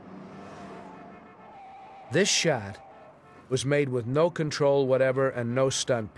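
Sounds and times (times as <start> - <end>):
car roaring past at high speed along a city street: 0.0 - 1.2
speech: 2.1 - 2.8, 3.5 - 6.1.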